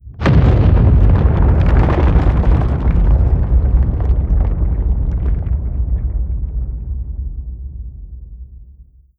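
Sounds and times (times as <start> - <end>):
rocks landing in creature combat: 0.0 - 7.3.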